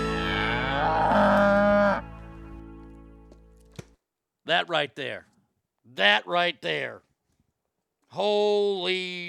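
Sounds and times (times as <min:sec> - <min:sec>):
cow mooing: 0:00.2 - 0:02.1
speech: 0:04.5 - 0:07.1, 0:08.1 - 0:09.2.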